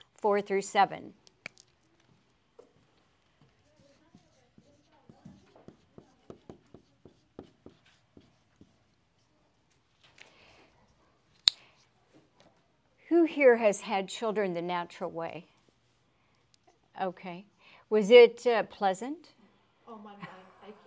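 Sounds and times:
speech: 0.2s - 1.2s, 13.3s - 15.5s, 17.0s - 20.8s
pens on paper as an audience writes down a scripture verse: 2.6s - 9.8s.

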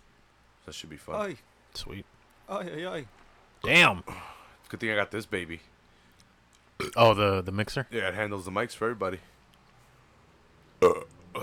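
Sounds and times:
speech: 0.7s - 5.7s, 6.8s - 9.3s
person burping after drinking an energy drink: 6.8s - 7.1s, 10.8s - 11.4s.

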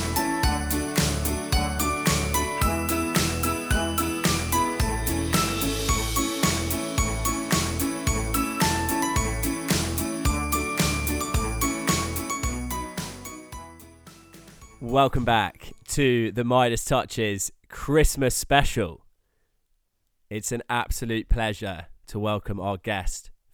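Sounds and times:
bells jingling in Christmas music: 0.0s - 15.4s
upbeat instrumental Christmas music with bouncy bass beat: 0.0s - 15.6s
speech: 14.9s - 19.0s, 20.3s - 23.3s.

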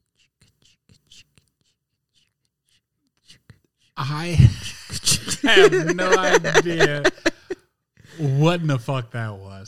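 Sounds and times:
ASMR-style teeth brushing: 0.0s - 4.0s
speech: 4.0s - 7.1s, 8.2s - 9.6s
laughter: 4.2s - 7.6s.

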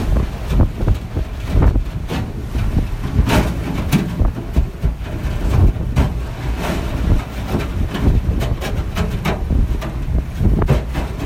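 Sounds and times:
icebreaker ship engine rumbling while grinding through sea ice: 0.0s - 11.2s.

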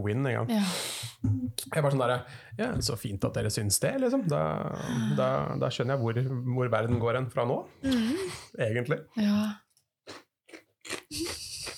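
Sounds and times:
speech: 0.0s - 10.2s
chips being chewed against the microphone: 10.1s - 11.7s.

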